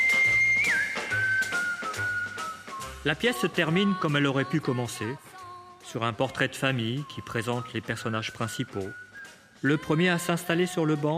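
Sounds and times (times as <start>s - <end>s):
person whistling at a boy during a stage play: 0.0s - 3.9s, 6.7s - 10.2s
speech: 3.0s - 5.3s, 5.9s - 9.0s, 9.6s - 11.1s.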